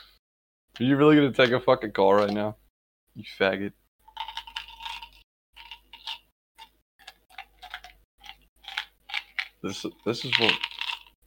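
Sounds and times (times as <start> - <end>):
speech: 0.8 - 2.6, 3.2 - 3.8, 9.6 - 10.7
chewing gum pieces rattling in a bottle: 4.0 - 11.2.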